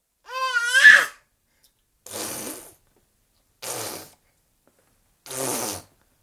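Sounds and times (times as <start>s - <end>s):
12 month baby boy screaming: 0.3s - 1.2s
12 month baby boy blowing raspberries: 2.0s - 2.8s, 3.6s - 4.3s, 5.2s - 6.0s.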